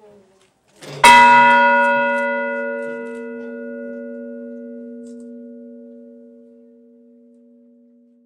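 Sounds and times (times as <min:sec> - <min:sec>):
bell: 0:00.9 - 0:08.2.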